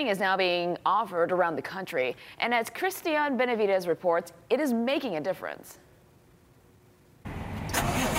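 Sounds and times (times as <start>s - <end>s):
speech: 0.0s - 5.8s
large truck engine cranking, starting and idling: 7.3s - 8.1s.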